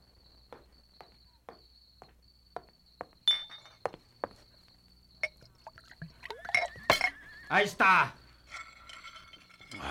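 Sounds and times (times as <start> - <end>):
glass tequila bottle clinking: 3.3 - 3.9, 5.2 - 7.5, 8.4 - 9.8
speech: 7.5 - 8.2.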